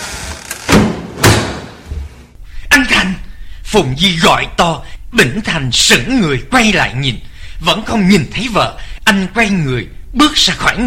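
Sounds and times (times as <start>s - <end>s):
front door banging open forcefully: 0.5s - 2.2s
speech: 3.0s - 10.8s.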